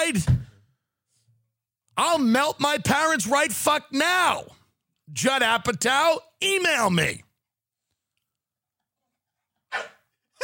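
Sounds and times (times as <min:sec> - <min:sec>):
speech: 0:00.1 - 0:00.5, 0:02.0 - 0:07.3
single sharp dog bark: 0:09.7 - 0:10.4.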